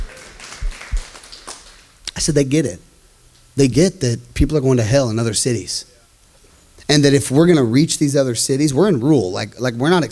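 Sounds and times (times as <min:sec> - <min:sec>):
audience clapping and applauding: 0:00.0 - 0:01.9
speech: 0:02.2 - 0:02.9, 0:03.6 - 0:05.9, 0:06.9 - 0:10.1.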